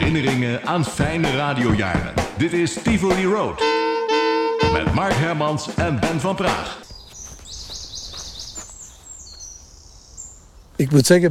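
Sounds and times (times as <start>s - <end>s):
speech: 0.1s - 3.9s, 4.7s - 6.9s, 10.8s - 11.3s
small birds chirping and trilling: 6.7s - 11.3s.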